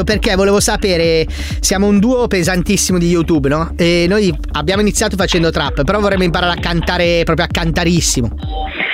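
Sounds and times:
speech: 0.0 - 8.8
heavy wheezy breathing over a phone line: 1.2 - 1.6.

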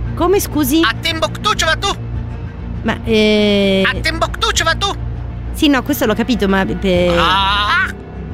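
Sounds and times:
speech: 0.2 - 2.1, 2.8 - 8.0
escaped pet parrot squawking: 7.1 - 7.9.

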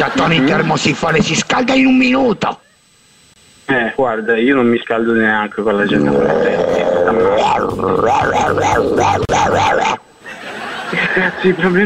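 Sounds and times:
laughter: 0.0 - 0.8, 6.7 - 11.8
speech: 0.0 - 2.6, 3.7 - 10.1, 10.9 - 11.8
dogs growling and snarling: 5.8 - 10.0.

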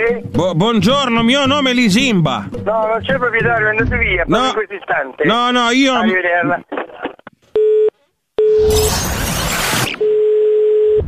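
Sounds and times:
speech: 0.0 - 6.8
harsh crackling noise: 8.6 - 10.0
telephone busy tone after hang-up: 10.0 - 11.0.

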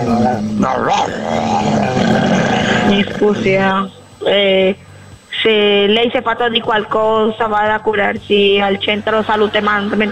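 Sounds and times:
person imitating a barking dog: 0.0 - 3.6
speech: 0.0 - 10.1.

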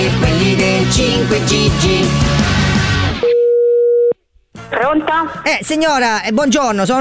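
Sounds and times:
speech: 0.1 - 2.6, 4.7 - 6.9
telephone busy tone after a call is hung up: 3.2 - 4.1.

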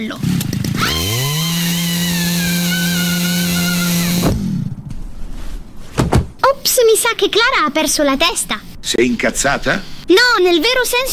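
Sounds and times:
speech: 0.0 - 0.4, 6.9 - 11.1
chainsaw carried on a shoulder being pull-started by cord and revving: 0.0 - 4.7
rough noise: 4.2 - 9.4.

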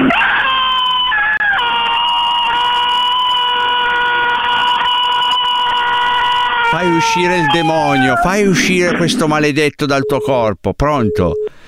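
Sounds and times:
loud piercing human scream: 0.1 - 8.5
speech: 7.0 - 11.6.

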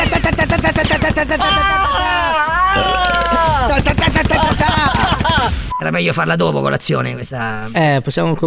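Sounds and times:
loud rapid bursts of gunfire: 0.0 - 1.4, 3.7 - 5.7
laughter: 0.0 - 5.7
wavering wailing voice-like cry: 1.4 - 3.8
speech: 5.9 - 8.4.

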